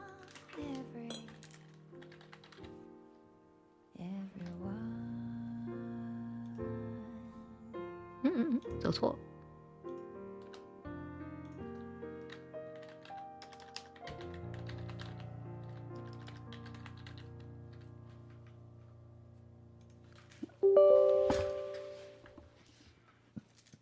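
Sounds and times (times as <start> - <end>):
steady music: 0.0 - 18.4, 20.5 - 22.4
typing on a computer keyboard: 0.2 - 2.8, 9.9 - 10.7, 11.4 - 18.6
speech: 8.5 - 9.3.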